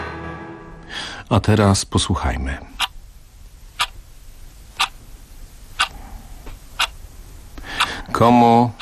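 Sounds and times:
speech: 1.3s - 2.8s, 8.2s - 8.7s
clock ticking: 2.8s - 3.0s, 3.7s - 4.0s, 4.8s - 5.0s, 5.7s - 6.0s, 6.7s - 7.0s, 7.7s - 8.7s.

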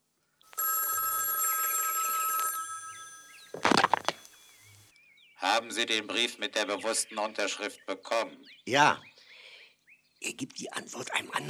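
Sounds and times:
old telephone in a private apartment ringing with an electric bell: 0.6s - 3.8s
speech: 5.6s - 9.1s, 10.2s - 11.4s.

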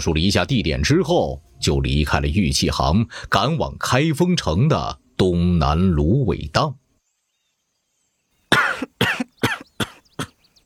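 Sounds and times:
speech: 0.0s - 6.8s
faint breaths: 3.0s - 3.4s
harsh coughing from a room: 8.5s - 10.4s.

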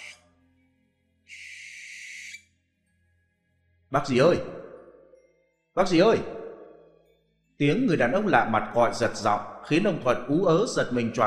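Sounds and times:
owl screeching: 0.0s - 0.2s, 1.3s - 2.4s
speech: 3.9s - 4.6s, 5.8s - 6.4s, 7.6s - 11.2s.

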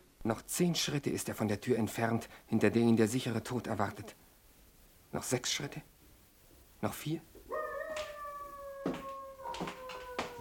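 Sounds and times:
speech: 0.2s - 4.3s, 5.1s - 5.9s, 6.8s - 7.3s
dog howling: 7.5s - 10.3s.

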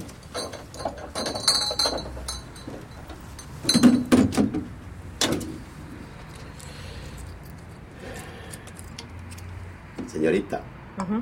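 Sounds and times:
ice and whisky poured into glasses from a motel room minibar: 0.4s - 4.0s
speech: 10.2s - 11.2s.

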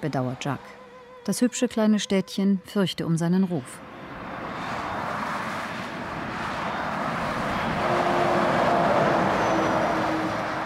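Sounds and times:
speech: 0.0s - 3.9s
heavy trucks thundering past on a national road: 3.9s - 10.6s.

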